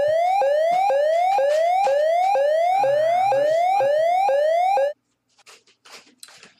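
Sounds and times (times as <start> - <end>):
electronic siren-like alarm sound effect: 0.0 - 5.0.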